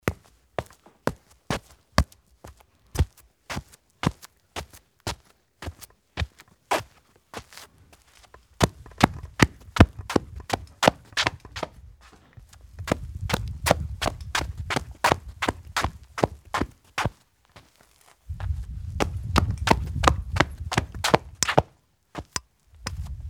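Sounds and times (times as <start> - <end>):
footsteps in shoes: 0.0 - 23.2.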